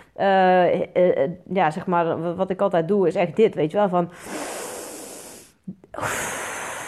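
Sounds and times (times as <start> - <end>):
speech: 0.2 - 4.6, 6.0 - 6.4
deep inhale: 4.1 - 6.8
forceful exhale: 4.2 - 6.8.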